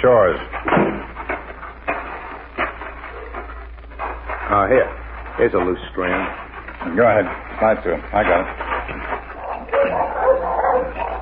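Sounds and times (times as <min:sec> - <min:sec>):
speech: 0:00.0 - 0:00.9, 0:04.5 - 0:09.1
low rumble: 0:00.0 - 0:11.2
several dogs barking and yipping: 0:00.6 - 0:04.5, 0:06.0 - 0:11.2.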